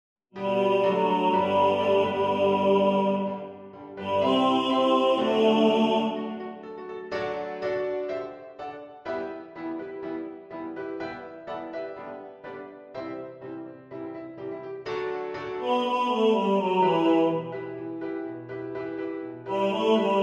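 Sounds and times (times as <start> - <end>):
tenor singing in the foreground: 0.4 - 6.7, 15.6 - 18.0, 19.4 - 20.2
piano: 0.4 - 20.2.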